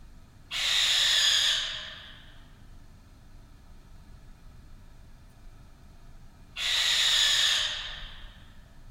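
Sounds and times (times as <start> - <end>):
barn owl rasping screeches: 0.5 - 2.4, 6.6 - 8.4.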